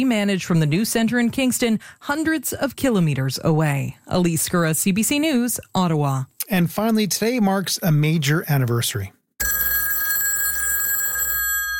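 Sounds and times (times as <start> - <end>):
speech: 0.0 - 9.2
telephone bell ringing: 9.4 - 11.7.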